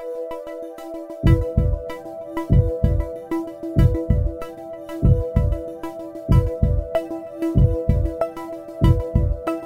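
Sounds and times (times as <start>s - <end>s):
jingle with heartbeat: 1.2s - 5.8s, 6.3s - 8.2s, 8.8s - 9.5s.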